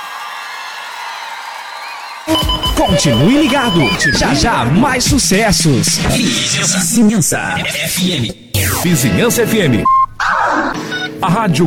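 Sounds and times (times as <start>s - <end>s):
large live crowd cheering and applauding: 0.0s - 5.0s
speech: 2.3s - 10.0s, 10.6s - 11.6s.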